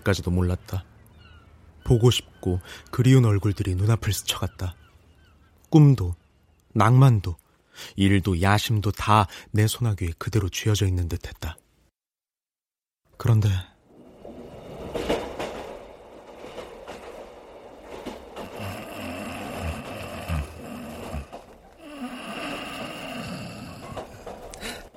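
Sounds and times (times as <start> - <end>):
speech: 0.0 - 0.9, 1.9 - 4.8, 5.7 - 6.2, 6.8 - 11.6, 13.2 - 13.7
train rolling along the rails: 13.8 - 24.9
heavier clunks and rattles of a train: 14.6 - 18.8.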